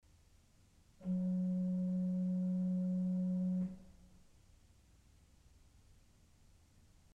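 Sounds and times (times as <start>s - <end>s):
Principal 4' organ pipe playing F sharp: 1.0s - 4.1s.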